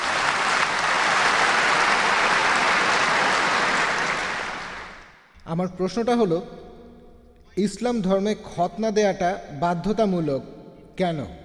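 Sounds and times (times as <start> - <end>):
audience applause at a televised event: 0.0 - 5.2
speech: 5.5 - 6.7, 7.6 - 11.4.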